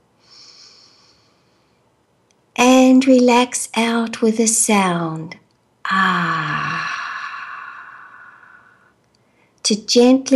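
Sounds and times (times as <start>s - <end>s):
deep breath in during a calming group meditation exercise: 0.2s - 1.8s, 5.9s - 9.6s
speech: 2.9s - 6.8s, 9.7s - 10.3s.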